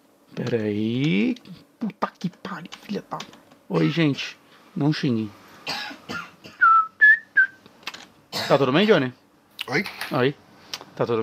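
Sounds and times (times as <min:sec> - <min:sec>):
speech: 0:00.3 - 0:05.9, 0:08.5 - 0:10.4, 0:11.0 - 0:11.2
person coughing roughly from smoke: 0:05.7 - 0:06.7, 0:08.3 - 0:08.6
short whistled notes: 0:06.6 - 0:07.6.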